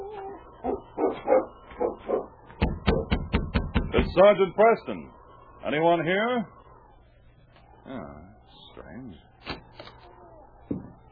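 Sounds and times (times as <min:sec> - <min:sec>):
dog whimpering outside a building: 0:00.0 - 0:02.3
dog barking outside a building: 0:00.6 - 0:03.1
speech: 0:04.2 - 0:06.6, 0:07.9 - 0:09.2.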